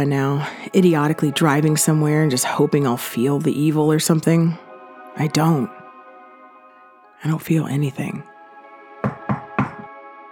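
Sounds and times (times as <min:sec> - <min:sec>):
speech: 0:00.0 - 0:04.6, 0:05.2 - 0:05.8, 0:07.2 - 0:08.3
knocking on a car window: 0:09.0 - 0:09.9.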